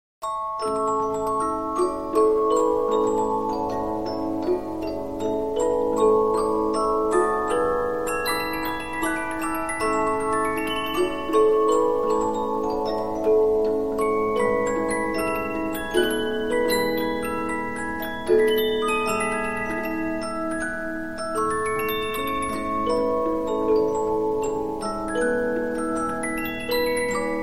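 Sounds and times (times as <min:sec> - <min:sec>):
15-inch disc music box: 0:00.2 - 0:27.4.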